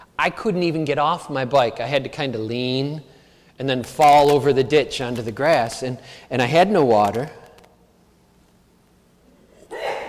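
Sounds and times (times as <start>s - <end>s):
speech: 0.2s - 7.4s
sneeze: 9.5s - 10.0s.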